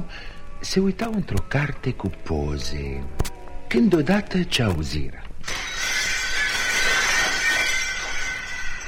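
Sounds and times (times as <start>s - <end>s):
speech: 0.6s - 5.7s
glass fragments tinkling: 5.4s - 8.8s
glass window panes shattering: 5.4s - 8.8s.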